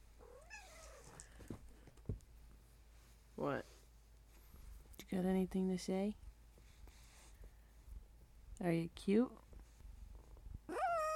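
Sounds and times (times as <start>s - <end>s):
speech: 3.4s - 3.7s, 5.1s - 6.2s, 8.6s - 9.4s
cat meowing: 10.7s - 11.1s.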